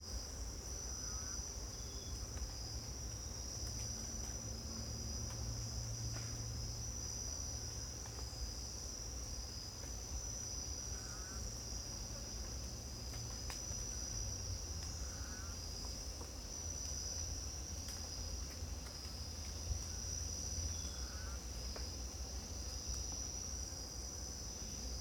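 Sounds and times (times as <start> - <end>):
insect chorus in a Costa Rica jungle rainforest in the morning: 0.0 - 24.9
faint bird calls in a Costa Rica jungle rainforest: 10.9 - 11.4, 15.0 - 15.6, 20.8 - 21.4.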